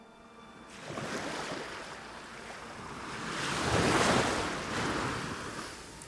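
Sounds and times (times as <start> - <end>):
sea waves washing onto the shore: 0.7 - 6.0
steady windy hiss: 1.9 - 6.0.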